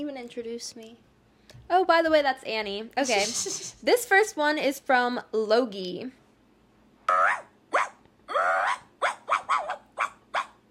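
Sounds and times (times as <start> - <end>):
speech: 0.0 - 6.2
person imitating a chihuahua yapping: 7.1 - 10.5.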